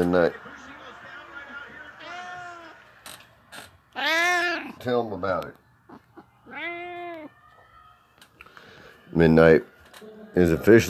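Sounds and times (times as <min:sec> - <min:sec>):
speech: 0:00.1 - 0:00.5, 0:04.8 - 0:05.6, 0:09.1 - 0:10.8
cat meowing: 0:03.9 - 0:04.8, 0:05.9 - 0:07.4.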